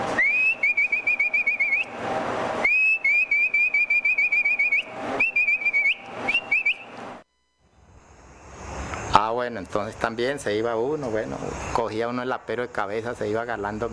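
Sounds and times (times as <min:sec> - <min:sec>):
loud human whistle driving horses to the corral: 0:00.1 - 0:02.0, 0:02.6 - 0:07.2
speech: 0:09.5 - 0:13.9.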